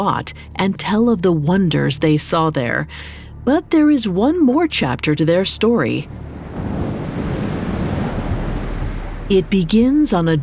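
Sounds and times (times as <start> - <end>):
speech: 0.0 - 6.3, 9.3 - 10.4
fierce desert wind howling through city streets on a dark night: 6.0 - 10.4.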